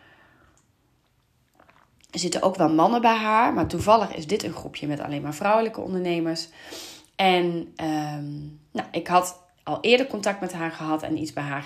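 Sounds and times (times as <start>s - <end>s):
person sipping and swallowing tea: 0.4s - 2.1s
speech: 2.2s - 11.6s.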